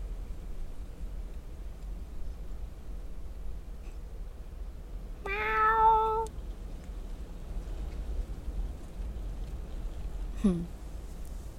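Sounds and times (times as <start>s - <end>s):
steady hiss of noise: 0.0s - 11.5s
cat meowing: 5.2s - 6.3s.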